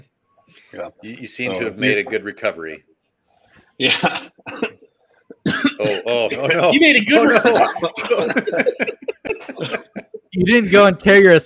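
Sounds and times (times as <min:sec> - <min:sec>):
speech: 0:00.6 - 0:02.9, 0:03.8 - 0:04.7, 0:05.8 - 0:09.8, 0:10.4 - 0:11.4
harsh forceful coughs: 0:03.8 - 0:06.6, 0:07.3 - 0:10.1
laughter: 0:06.2 - 0:10.3.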